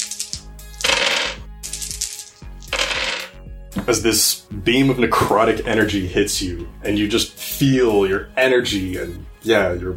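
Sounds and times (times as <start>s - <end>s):
dice clattering across a hard table: 0.0s - 3.4s
speech: 3.9s - 9.9s.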